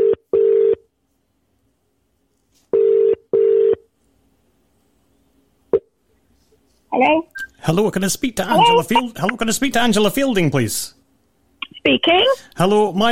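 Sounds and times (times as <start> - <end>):
telephone double-pulse ring tones on the line: 0.0 - 0.8, 2.8 - 3.8
speech: 7.0 - 11.0, 11.8 - 13.0.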